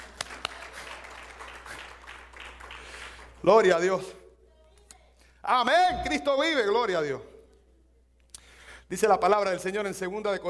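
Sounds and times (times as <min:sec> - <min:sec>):
sharp claps: 0:00.0 - 0:03.4
audience applauding: 0:00.0 - 0:03.5
speech: 0:03.4 - 0:04.2, 0:05.5 - 0:07.3, 0:08.9 - 0:10.4.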